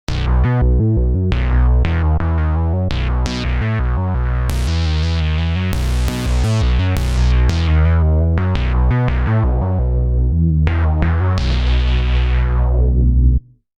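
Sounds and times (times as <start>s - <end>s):
synthesizer bass: 0.1s - 13.6s.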